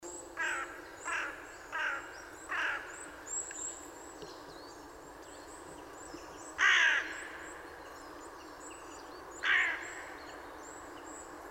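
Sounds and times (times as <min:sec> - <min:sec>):
carrion crow (Corvus corone) cawing: 0:00.4 - 0:03.0, 0:06.6 - 0:07.3, 0:09.4 - 0:10.0.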